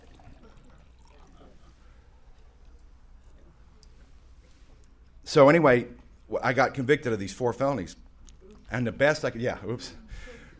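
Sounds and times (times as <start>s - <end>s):
water pouring into a glass: 0.0s - 2.6s
speech: 5.3s - 8.0s, 8.7s - 10.3s.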